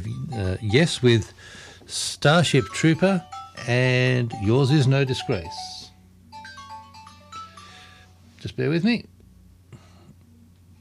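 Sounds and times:
phone ringing with a short melodic ringtone: 0.0s - 1.3s, 2.4s - 8.2s
speech: 0.3s - 5.8s, 8.4s - 9.1s.

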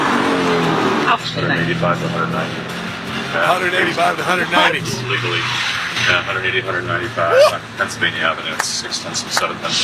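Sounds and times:
race car engines roaring past on a street circuit on Pennsylvania Avenue: 0.0s - 9.8s
people talking: 1.1s - 2.6s, 3.4s - 9.8s
race car tire squeals: 4.4s - 7.8s.

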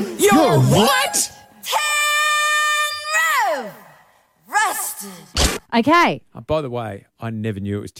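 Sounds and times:
woman yelling a pop song line: 0.2s - 3.8s, 4.5s - 5.3s
speech: 5.8s - 7.9s.

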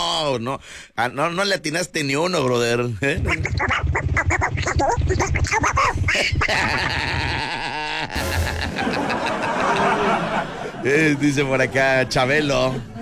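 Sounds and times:
speech: 0.3s - 12.9s
raspy quacking cartoon-duck voice babbling: 3.2s - 6.5s
laughter: 6.1s - 12.9s.

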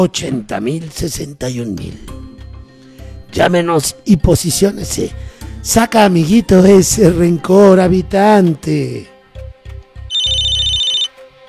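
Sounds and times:
speech: 0.0s - 2.2s, 3.3s - 9.1s
telephone ringing with an incoming call: 10.1s - 11.2s.

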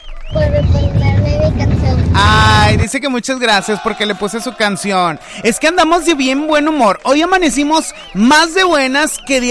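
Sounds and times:
street traffic noise: 0.3s - 2.8s
speech: 1.5s - 9.4s.

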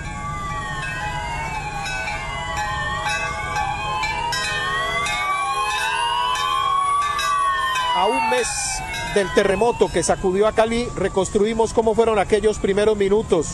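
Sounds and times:
low continuous rumble of street noise: 0.0s - 13.5s
several emergency sirens wailing: 0.0s - 13.5s
church bells ringing: 0.8s - 10.2s
speech: 8.3s - 13.5s.

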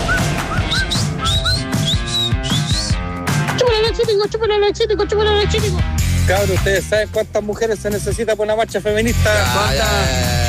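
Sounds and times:
person whistling catcalls: 0.1s - 3.0s
speech: 4.2s - 10.3s.

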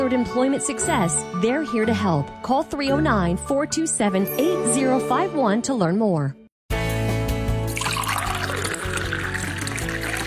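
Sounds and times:
sustained music: 0.0s - 10.2s
speech: 0.1s - 6.4s
water pouring and trickling: 7.7s - 10.2s.

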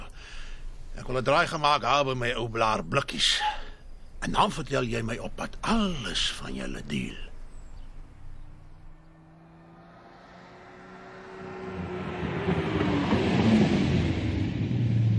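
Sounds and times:
speech: 1.0s - 3.5s, 4.2s - 7.3s
sports car engine roaring while driving fast: 8.4s - 15.1s.

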